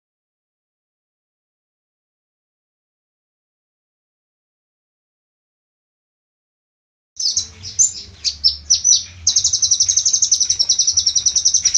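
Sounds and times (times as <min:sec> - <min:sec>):
low background hum: 0:07.2 - 0:11.7
small bird singing: 0:07.2 - 0:11.7.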